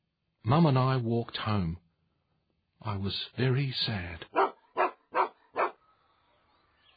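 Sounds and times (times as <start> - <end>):
speech: 0.4 - 1.8, 2.8 - 4.4
dog barking at home: 4.3 - 5.8.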